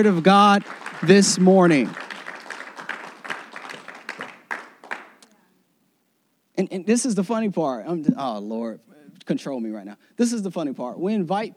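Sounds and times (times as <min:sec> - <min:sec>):
speech: 0:00.0 - 0:02.1, 0:06.6 - 0:11.5
audience clapping: 0:00.0 - 0:05.4.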